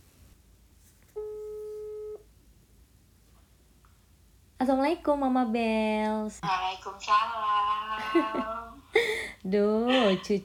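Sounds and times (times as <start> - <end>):
faint hiss: 0.0 - 10.4
steady electronic telephone ringback tone: 1.2 - 2.2
speech: 4.6 - 8.6, 9.4 - 10.4
laughter: 8.0 - 8.6.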